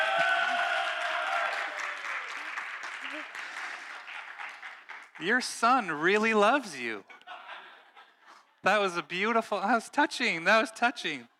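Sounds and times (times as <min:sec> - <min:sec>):
scattered voices and cheers: 0:00.0 - 0:03.3
church audience clapping for the announcements: 0:00.0 - 0:06.2
speech: 0:05.2 - 0:07.1, 0:08.6 - 0:11.3
laughter: 0:07.0 - 0:08.6.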